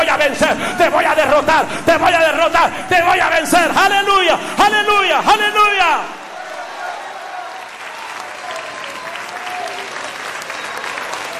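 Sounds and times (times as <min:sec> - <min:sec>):
speech: 0:00.1 - 0:06.2
large worshipping crowd applauding: 0:06.1 - 0:11.3.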